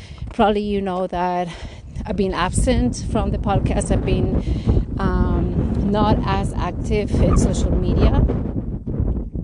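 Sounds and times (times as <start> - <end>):
wind buffeting the microphone outdoors: 0.0 - 9.4
speech: 0.4 - 8.6.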